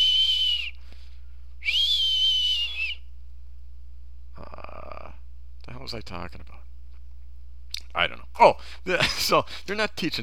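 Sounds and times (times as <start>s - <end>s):
person whistling long high notes: 0.0s - 0.8s, 1.6s - 3.1s
speech: 5.9s - 6.6s, 8.0s - 10.2s.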